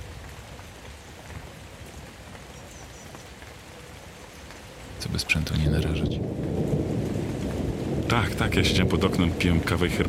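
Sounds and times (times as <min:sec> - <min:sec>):
dense storm rainfall pattering on a surface: 0:00.0 - 0:10.0
speech: 0:05.0 - 0:07.0, 0:08.1 - 0:10.0.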